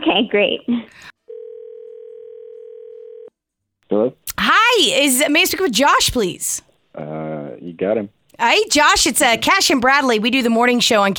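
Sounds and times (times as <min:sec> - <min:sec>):
speech: 0:00.1 - 0:01.1, 0:03.9 - 0:07.2, 0:07.8 - 0:11.1
telephone dial tone while placing a call: 0:01.3 - 0:03.3.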